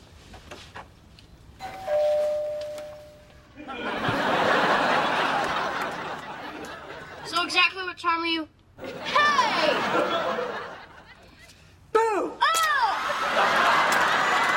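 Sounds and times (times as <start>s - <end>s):
doorbell ringing with a clear sustained chime: 1.6s - 3.4s
laughter: 3.5s - 7.4s, 8.8s - 11.5s, 12.8s - 14.5s
speech: 8.0s - 9.1s.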